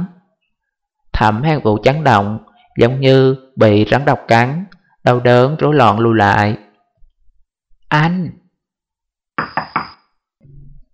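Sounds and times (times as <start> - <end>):
speech: 1.2 - 6.6, 7.9 - 8.4
knocking on a door: 9.4 - 10.0.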